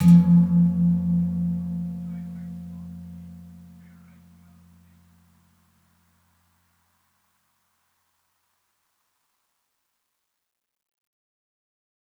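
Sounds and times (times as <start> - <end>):
gamelan kempul gong: 0.0 - 4.7.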